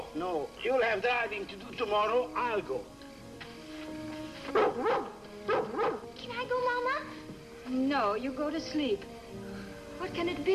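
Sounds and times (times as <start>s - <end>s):
speech: 0.2s - 3.0s, 4.5s - 9.4s, 10.0s - 10.5s
dog barking at night in high yelping bursts: 4.5s - 6.1s.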